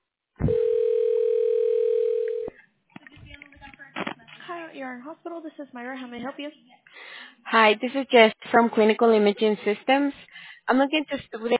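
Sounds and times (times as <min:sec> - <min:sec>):
faint uneven telephone line noise: 0:00.4 - 0:04.4
telephone dial tone on a call to a hospital line: 0:00.5 - 0:02.6
speech: 0:04.8 - 0:06.8, 0:07.5 - 0:11.5.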